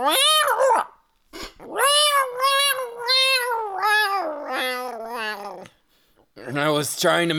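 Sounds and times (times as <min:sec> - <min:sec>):
speech: 0:00.0 - 0:00.9, 0:06.5 - 0:07.3
voice imitating a cat with meows and growly yowls: 0:00.0 - 0:01.0, 0:01.7 - 0:05.7.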